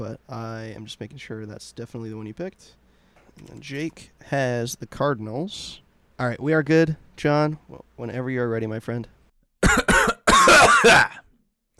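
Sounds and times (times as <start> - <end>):
speech: 0.0 - 2.8, 3.4 - 10.0, 10.6 - 11.2
person clearing throat: 9.6 - 11.3.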